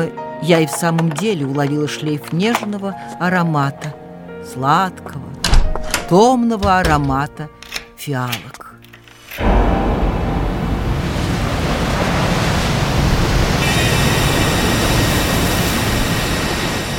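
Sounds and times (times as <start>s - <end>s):
speech: 0.0s - 5.3s, 6.1s - 8.6s
wind rushing over stormy sea: 9.4s - 16.4s
stormy sea waves crashing: 9.4s - 16.9s.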